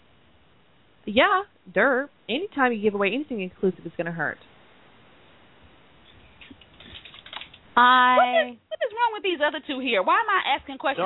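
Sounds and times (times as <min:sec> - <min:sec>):
speech: 0:01.0 - 0:04.5, 0:07.8 - 0:11.0
typing on a computer keyboard: 0:06.5 - 0:07.6.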